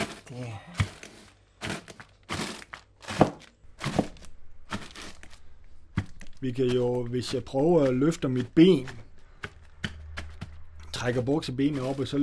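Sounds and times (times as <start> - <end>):
crinkly bag rustle: 0.0 - 5.5
brittle meringues crushed in a bag with a rolling pin: 0.0 - 12.2
speech: 0.3 - 0.9, 6.4 - 9.0, 11.0 - 12.2.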